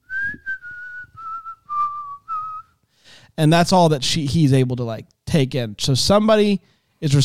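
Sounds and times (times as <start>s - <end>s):
person whistling a tune: 0.0s - 2.8s
speech: 3.4s - 7.2s.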